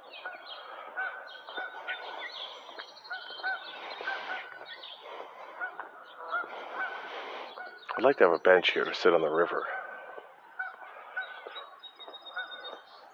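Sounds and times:
geese honking by a river: 0.0 - 13.1
speech: 8.0 - 9.8.

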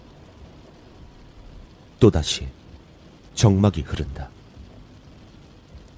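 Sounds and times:
rain pattering on a taxi window: 0.0 - 5.9
speech: 2.0 - 2.6, 3.4 - 4.4.

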